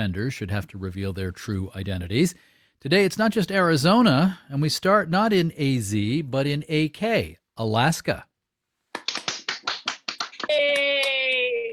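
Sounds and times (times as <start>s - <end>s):
speech: 0.0s - 8.3s
applause over a Zoom call in Alaska: 8.9s - 11.7s.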